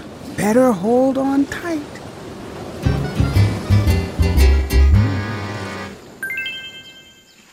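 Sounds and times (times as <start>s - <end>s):
water sloshing and splashing: 0.0s - 7.0s
continuous wash of waves: 0.0s - 7.5s
speech: 0.4s - 2.0s
bright chiming: 6.2s - 7.4s.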